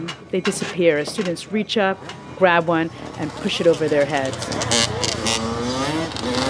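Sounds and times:
speech: 0.3 - 5.0
red Honda CR85 and blue Yamaha YZ125 dirt bike engines revving: 1.9 - 6.4.

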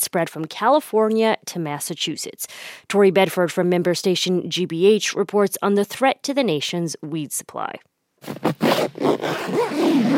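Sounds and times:
speech: 0.0 - 10.1
zipper scraping shut on white full-body protective coveralls: 8.2 - 10.1.

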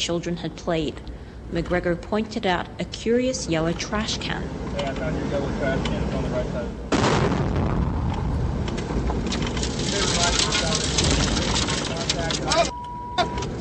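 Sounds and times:
speech: 0.0 - 7.6, 12.3 - 12.7
roaring rumble and clatter of metal and sand showering into a Humvee: 3.6 - 12.8
IED blast hitting a Humvee in a convoy: 6.9 - 11.8.

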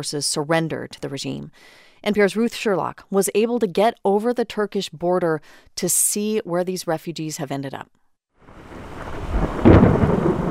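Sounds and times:
speech: 0.0 - 8.0
rain hissing during a thunderstorm: 8.4 - 10.4
thunder rumbling during a thunderstorm in northern Syria: 8.5 - 10.4.

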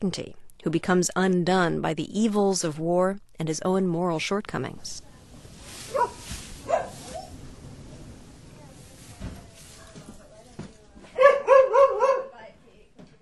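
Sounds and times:
speech: 0.0 - 5.1
two dogs barking: 5.9 - 7.4, 11.1 - 12.4.

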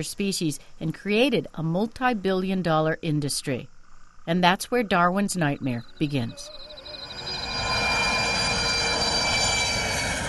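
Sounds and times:
speech: 0.0 - 6.8
cargo airplane flying overhead: 6.5 - 10.2.

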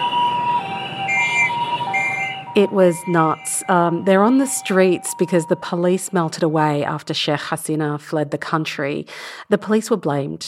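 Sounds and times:
engines: 0.0 - 6.4
horns: 0.0 - 6.4
ambulance siren wailing at a busy intersection: 0.0 - 6.8
traffic noise at a crowded intersection: 0.0 - 6.8
speech: 2.6 - 10.4.

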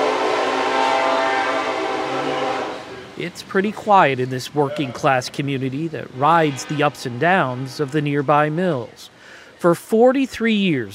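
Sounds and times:
sustained horn-like tonal hum of a freight train: 0.0 - 3.2, 4.6 - 9.0
freight train passing between steel mills in Gary Indiana: 0.0 - 10.9
speech: 3.2 - 10.9.

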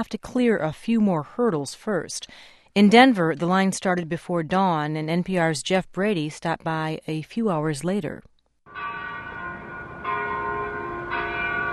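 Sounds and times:
speech: 0.0 - 8.3
downtown church bells ringing noon outdoors: 8.7 - 11.7.

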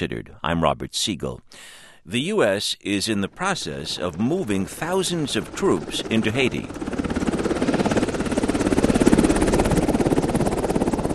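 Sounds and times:
speech: 0.0 - 7.0
Navy Seahawk helicopter flying overhead: 3.2 - 11.1.

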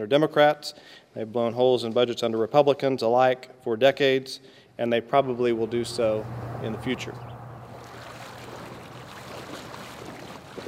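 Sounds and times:
speech: 0.0 - 7.3
low hum: 5.5 - 9.4
river water rushing: 5.6 - 10.6
water sloshing and splashing: 7.5 - 10.6.

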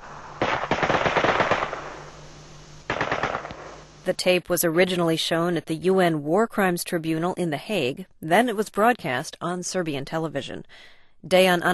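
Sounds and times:
machine gun fire: 0.2 - 2.1, 2.9 - 3.9
speech: 4.0 - 11.7.

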